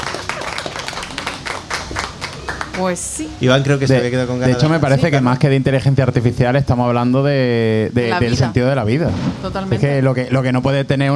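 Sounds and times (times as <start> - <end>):
spontaneous applause of many hands clapping: 0.0 - 3.6
speech: 2.8 - 11.1.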